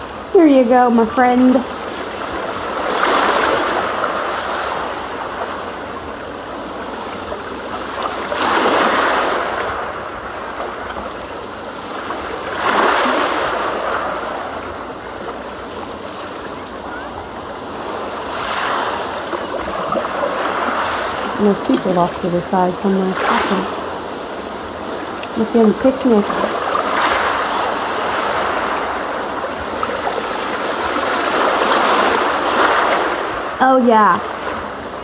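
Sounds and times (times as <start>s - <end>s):
lake waves lapping on shore: 0.0s - 35.0s
speech: 0.3s - 1.8s, 22.0s - 23.8s, 25.4s - 26.4s, 33.6s - 34.3s.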